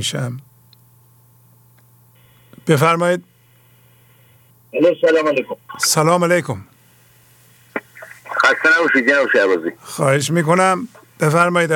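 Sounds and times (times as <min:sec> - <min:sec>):
speech: 0:00.0 - 0:00.5, 0:02.7 - 0:03.3, 0:04.7 - 0:06.7, 0:08.5 - 0:11.7
telephone line noise with a steady hum: 0:03.4 - 0:06.2, 0:07.2 - 0:11.3.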